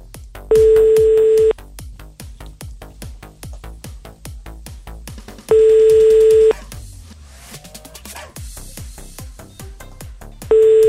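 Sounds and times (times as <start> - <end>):
rhythmic clicking beat: 0.0 - 7.2, 7.8 - 10.8
ringback tones from an outgoing phone call: 0.5 - 1.5, 5.5 - 6.5, 10.5 - 10.8.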